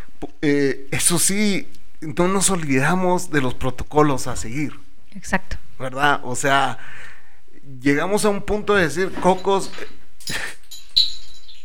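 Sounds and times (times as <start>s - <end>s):
speech: 0.4s - 7.1s, 7.7s - 10.5s
computer monitor wobbling with a brief high-pitched ring: 11.0s - 11.6s.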